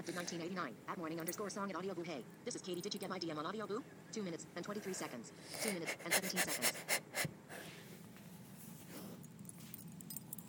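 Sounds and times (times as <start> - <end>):
speech: 0.0 - 7.1
low hum: 0.0 - 10.4
dog sniffing: 4.8 - 7.3.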